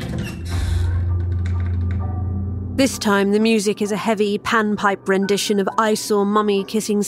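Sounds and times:
heavy double doors creaking open: 0:00.0 - 0:02.2
speech: 0:02.8 - 0:07.0.

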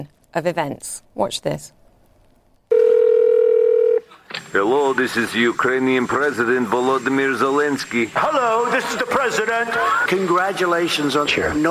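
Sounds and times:
speech: 0:00.0 - 0:01.8, 0:04.5 - 0:11.6
telephone dial tone: 0:02.7 - 0:04.1.

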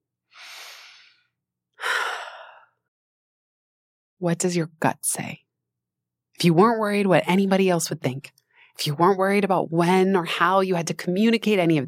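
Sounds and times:
slow deep breath: 0:00.3 - 0:02.9
speech: 0:04.2 - 0:05.4, 0:06.4 - 0:11.8.

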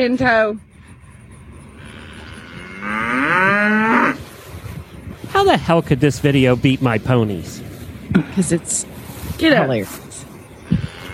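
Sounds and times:
speech: 0:00.0 - 0:00.7, 0:05.4 - 0:10.0
cow mooing: 0:01.6 - 0:04.3, 0:10.6 - 0:11.1.

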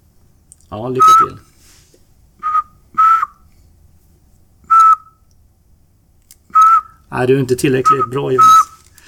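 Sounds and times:
speech: 0:00.7 - 0:01.5, 0:07.2 - 0:08.6
person whistling an imitation of a bird call: 0:01.0 - 0:01.4, 0:02.4 - 0:03.4, 0:04.7 - 0:05.2, 0:06.5 - 0:07.0, 0:07.8 - 0:08.8.

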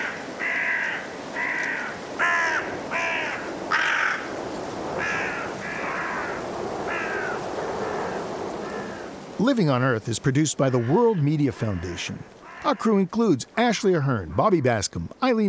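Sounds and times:
Carrion Crows cawing in a cold woodland at dusk: 0:00.0 - 0:04.4, 0:05.0 - 0:09.2, 0:10.6 - 0:13.0
blustery wind in a cold woodland: 0:00.0 - 0:15.4
speech: 0:09.4 - 0:15.4.

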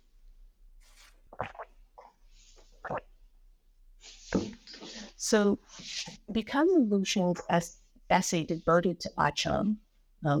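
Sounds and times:
person slurping and swallowing a sip of water: 0:01.0 - 0:03.2
speech: 0:05.2 - 0:10.3.

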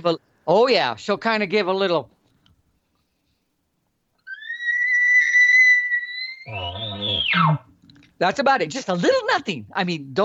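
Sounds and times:
speech: 0:00.0 - 0:02.2, 0:07.3 - 0:10.2
person imitating a cow elk call with a lip bawl: 0:04.2 - 0:07.7.

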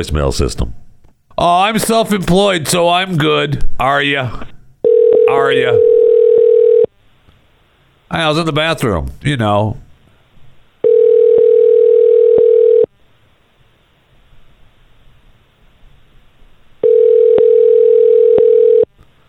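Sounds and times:
speech: 0:00.0 - 0:00.8, 0:01.4 - 0:04.5, 0:05.3 - 0:05.9, 0:08.1 - 0:09.8
telephone ringback tone while placing a call: 0:04.8 - 0:06.9, 0:10.8 - 0:12.9, 0:16.8 - 0:18.9.

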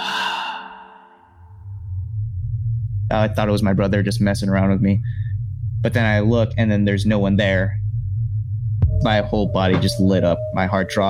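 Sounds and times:
voice imitating someone breathing out next to an ear: 0:00.0 - 0:01.3
low rumble: 0:01.2 - 0:11.0
speech: 0:03.1 - 0:05.2, 0:05.8 - 0:07.8, 0:09.0 - 0:11.0.

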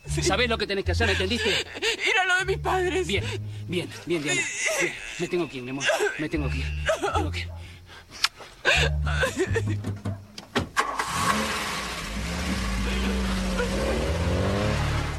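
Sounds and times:
car engine humming: 0:00.0 - 0:15.1
laughter: 0:00.1 - 0:10.1, 0:12.8 - 0:14.1
speech: 0:00.2 - 0:07.6, 0:08.8 - 0:10.1
car door thumps: 0:09.8 - 0:10.8.

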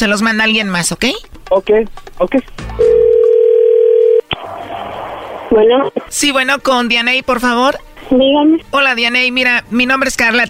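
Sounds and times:
speech: 0:00.0 - 0:03.0, 0:05.6 - 0:10.4
telephone tone on a call being placed: 0:02.8 - 0:04.6.

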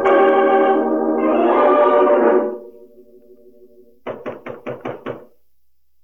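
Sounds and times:
dramatic music: 0:00.0 - 0:04.5
knocking on the wooden door of a hut: 0:04.1 - 0:05.4.

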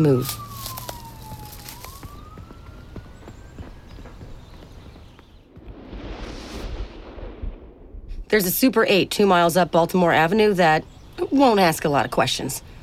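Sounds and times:
speech: 0:00.0 - 0:00.4, 0:08.3 - 0:12.7
police siren wailing: 0:00.0 - 0:05.1
scattered clattering footsteps: 0:00.0 - 0:05.7.

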